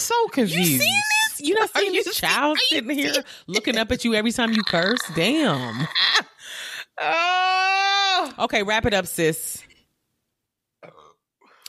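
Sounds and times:
speech: 0:00.1 - 0:07.6, 0:08.3 - 0:09.7
burp: 0:04.5 - 0:06.0, 0:10.8 - 0:11.3.

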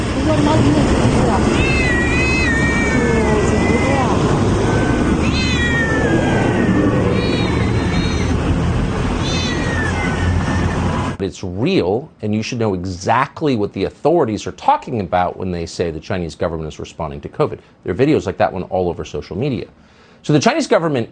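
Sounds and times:
constant loud rumbling noise: 0:00.0 - 0:11.2
speech: 0:00.3 - 0:01.8, 0:11.2 - 0:21.0
house cats meowing in bags on sidewalks: 0:01.4 - 0:11.2.

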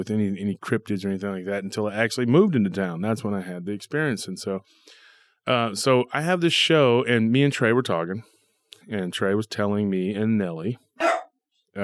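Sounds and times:
speech: 0:00.0 - 0:11.1
dog barking: 0:11.0 - 0:11.3.

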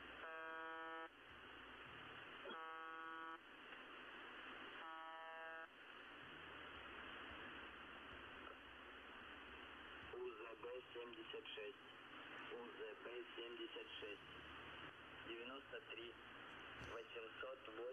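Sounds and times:
constant hiss of shortwave radio static: 0:00.0 - 0:17.9
harsh droning buzz tones from a shortwave radio station: 0:02.5 - 0:03.4.

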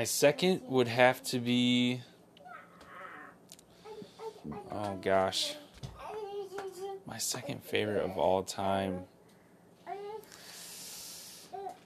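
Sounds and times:
speech: 0:00.0 - 0:02.1, 0:04.4 - 0:05.6, 0:07.1 - 0:09.1
steady background hiss: 0:00.0 - 0:11.8
toddler girl babbling in high-pitched squeals: 0:02.4 - 0:04.4.

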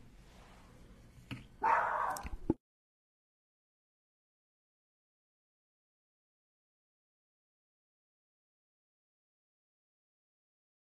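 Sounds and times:
dog barking: 0:01.6 - 0:02.2.

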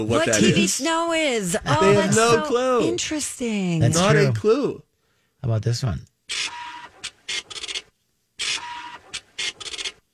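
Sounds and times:
speech: 0:00.0 - 0:06.4
dot matrix printer printing: 0:06.3 - 0:10.0.

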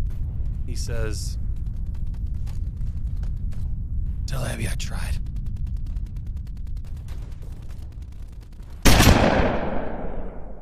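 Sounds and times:
low rumble: 0:00.0 - 0:10.6
speech: 0:00.7 - 0:01.4, 0:04.3 - 0:05.3
gunshot sound effect: 0:08.9 - 0:10.6.

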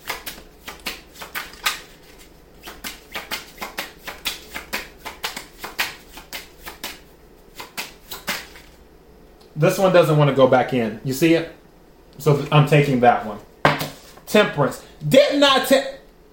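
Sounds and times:
tarot cards shuffled by hand: 0:00.0 - 0:08.8, 0:13.8 - 0:14.3
speech: 0:09.6 - 0:11.6, 0:12.2 - 0:13.5, 0:14.3 - 0:15.9.

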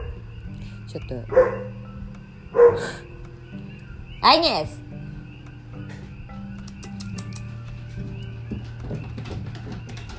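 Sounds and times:
speech: 0:00.9 - 0:01.8, 0:02.6 - 0:04.8
dog barking: 0:01.3 - 0:01.8, 0:02.5 - 0:03.0.

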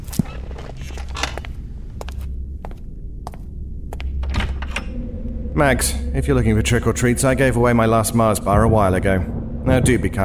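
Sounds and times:
door being opened with clunk and creak: 0:00.0 - 0:01.6, 0:04.2 - 0:05.1
soft footsteps indoors: 0:00.0 - 0:04.2
low steady rumble: 0:00.0 - 0:10.2
speech: 0:05.6 - 0:10.2.

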